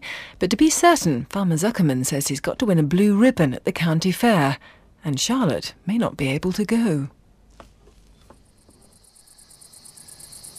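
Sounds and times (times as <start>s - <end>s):
speech: 0.4s - 7.2s
faint rustling: 7.4s - 9.0s
crickets chirping: 8.1s - 10.5s.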